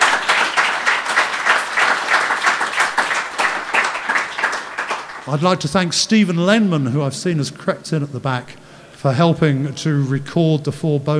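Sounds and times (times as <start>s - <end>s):
crowd applauding: 0.0s - 6.9s
laughter: 0.0s - 11.1s
speech: 5.3s - 11.1s.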